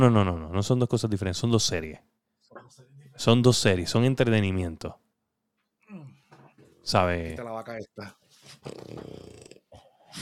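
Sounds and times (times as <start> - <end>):
speech: 0.0 - 5.0, 6.8 - 9.3
dog snoring with piglet-like grunts: 8.6 - 10.2.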